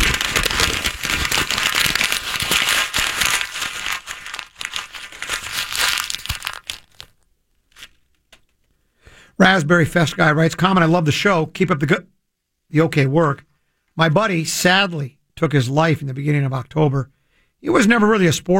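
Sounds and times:
paper letter being crumpled: 0.0s - 8.6s
speech: 9.4s - 18.5s.

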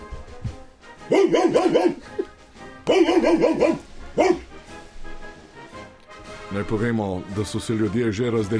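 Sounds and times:
unleashed dog barking: 1.0s - 2.2s, 2.8s - 4.5s
speech: 1.3s - 2.2s, 2.9s - 4.4s, 6.5s - 8.5s.

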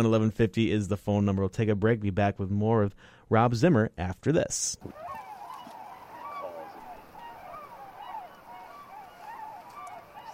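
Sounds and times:
speech: 0.0s - 5.2s
flock of Tundra Swans calling with soft wavering hoots and honks: 4.9s - 10.3s.

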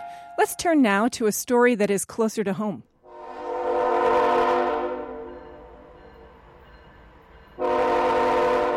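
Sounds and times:
speech: 0.4s - 2.9s
coal freight train horn blasts in West Boylston near Worcester: 3.0s - 5.4s, 7.6s - 8.7s
coal freight train rumble in West Boylston near Worcester: 3.4s - 8.7s.

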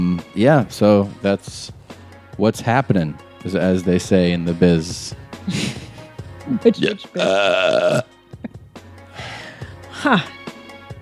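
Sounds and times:
speech: 0.3s - 1.8s, 2.4s - 5.9s, 6.5s - 8.1s, 10.0s - 10.4s
loud deep rumbling burp: 7.2s - 8.1s.

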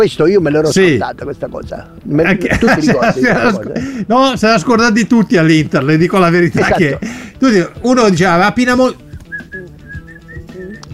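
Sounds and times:
speech: 0.0s - 9.0s
laughter: 2.2s - 4.1s, 6.4s - 7.2s
person whistling a short bright football chant melody: 9.0s - 10.9s.

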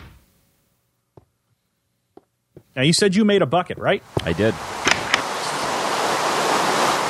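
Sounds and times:
speech: 2.8s - 4.9s
dense rain hissing: 3.9s - 7.0s.

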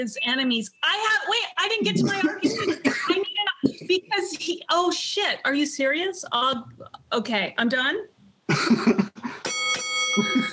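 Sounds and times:
speech: 0.0s - 3.1s, 3.9s - 9.5s
bell dinging to signal time running out in a debate: 9.4s - 10.5s.

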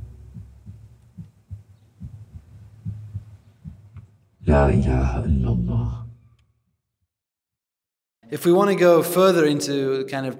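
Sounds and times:
heartbeat thumps picked up by throat microphone: 0.0s - 4.2s
speech: 4.4s - 5.7s, 8.3s - 10.3s.

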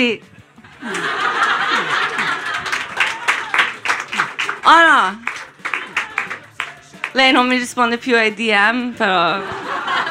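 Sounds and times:
speech: 0.0s - 1.3s, 4.6s - 5.4s, 7.1s - 9.6s
scattered laughter and chuckles: 0.7s - 3.2s, 9.4s - 10.0s
crowd applauding: 0.8s - 7.6s.

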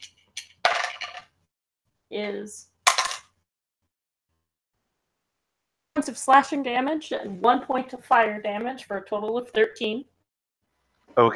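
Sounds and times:
dice tumbling onto a hard tabletop: 0.0s - 1.4s, 2.9s - 3.3s
speech: 2.1s - 2.7s, 6.0s - 10.1s, 11.2s - 11.3s.

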